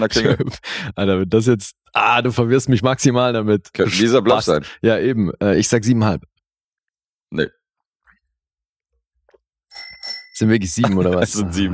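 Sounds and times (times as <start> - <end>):
laughter: 0.0 - 0.7, 10.7 - 11.7
speech: 0.0 - 6.3, 7.3 - 7.6, 10.4 - 11.7
small bell ringing: 9.7 - 10.8.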